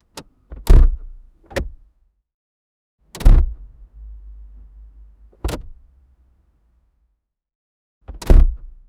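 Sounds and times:
car door shutting: 3.2 - 3.6, 5.4 - 5.8.

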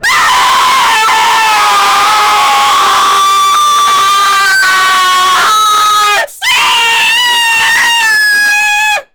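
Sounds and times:
clown screaming: 0.0 - 9.1.

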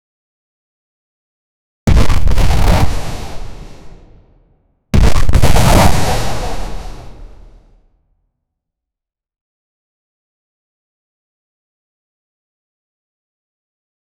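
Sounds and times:
brutal stabbing sound: 1.9 - 3.0, 5.0 - 5.9.

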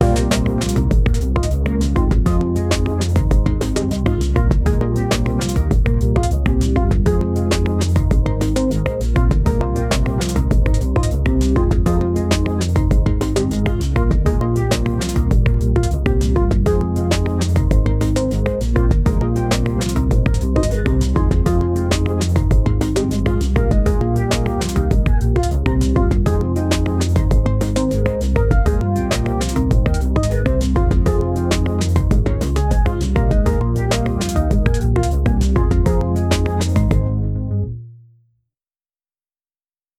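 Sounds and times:
upbeat funky rhythm: 0.0 - 37.1.

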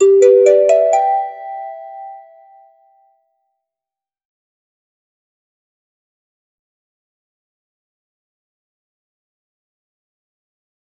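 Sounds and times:
notification beep: 0.0 - 2.4.

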